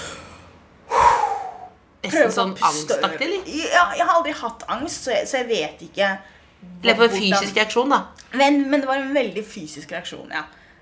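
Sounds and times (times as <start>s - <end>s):
voice imitating heavy breathless panting after physical exertion: 0.9s - 1.7s
speech: 2.0s - 10.6s.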